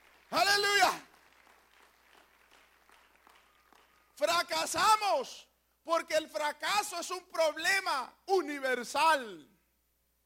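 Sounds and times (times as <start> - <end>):
audience at a church service clapping: 0.0 - 4.4
speech: 0.3 - 1.0, 4.2 - 9.5.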